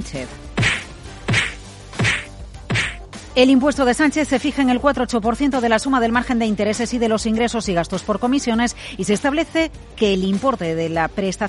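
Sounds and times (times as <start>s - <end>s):
speech: 0.0s - 0.5s, 3.4s - 11.4s
slap sound effect: 0.6s - 3.0s.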